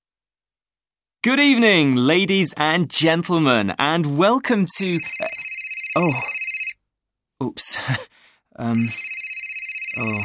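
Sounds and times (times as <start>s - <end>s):
speech: 1.2s - 5.4s, 6.0s - 6.4s, 7.4s - 9.1s, 10.0s - 10.2s
mobile phone ringtone as a bright electronic melody: 4.8s - 6.8s, 8.7s - 10.2s.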